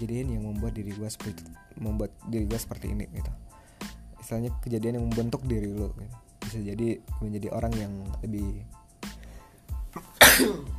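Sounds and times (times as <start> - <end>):
speech: 0.0 - 3.6, 4.2 - 8.8, 10.4 - 10.7
intake of breath: 3.5 - 4.1, 9.1 - 9.7
loud sneeze: 10.1 - 10.7.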